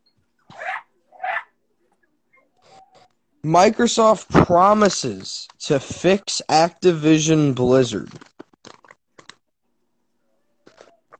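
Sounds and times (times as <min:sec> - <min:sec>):
dogs barking: 0:00.5 - 0:01.6
speech: 0:03.4 - 0:08.3.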